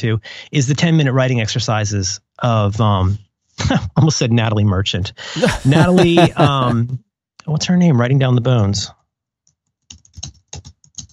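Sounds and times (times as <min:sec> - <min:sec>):
speech: 0:00.0 - 0:09.0
laughter: 0:05.3 - 0:06.9
typing on a computer keyboard: 0:09.5 - 0:11.1.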